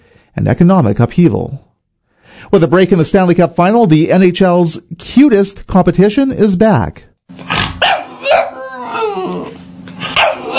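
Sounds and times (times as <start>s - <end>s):
speech: 0.4s - 1.6s, 2.4s - 7.6s
dog growling: 7.4s - 10.5s
dog barking: 7.5s - 9.1s, 10.0s - 10.5s.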